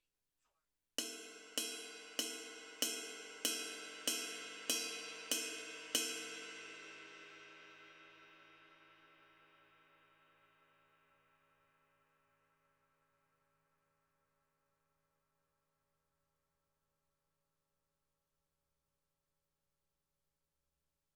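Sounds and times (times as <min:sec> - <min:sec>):
22 inch ride cymbal bell: 0:01.0 - 0:08.8.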